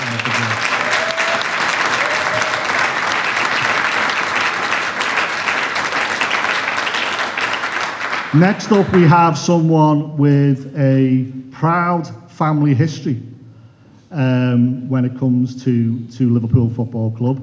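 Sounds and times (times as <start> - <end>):
sizeable audience applause: 0.0 - 9.1
speech: 8.4 - 13.3, 14.1 - 17.4.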